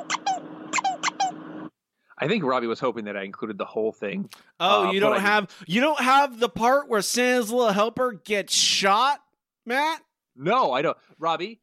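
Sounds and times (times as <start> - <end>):
squeaky toy squeaking: 0.0 - 1.4
speech: 2.2 - 11.6.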